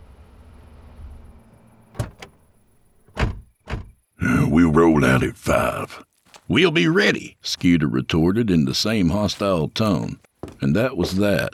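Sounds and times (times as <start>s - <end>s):
truck doors opening and shutting: 2.0s - 4.0s
truck engine rumbling at a cabin: 2.0s - 4.0s
speech: 4.6s - 11.5s.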